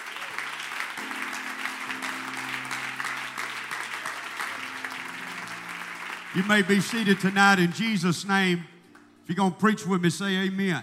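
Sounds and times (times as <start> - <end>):
audience applause: 0.0 - 8.0
sustained organ or keyboard tones: 0.9 - 10.8
speech: 6.3 - 8.7, 9.3 - 10.8.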